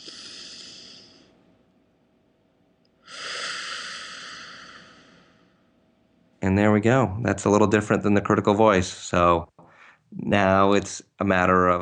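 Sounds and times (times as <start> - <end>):
deep breath drawn in and let out: 0.0 - 1.4, 3.0 - 5.8, 9.6 - 10.1
speech: 6.4 - 9.5, 10.1 - 11.8.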